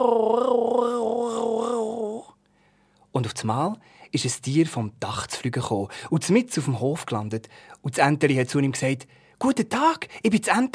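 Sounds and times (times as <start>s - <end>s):
speech: 0.0s - 0.4s, 3.2s - 10.7s
voice imitating a small black cat's meow: 0.0s - 2.3s.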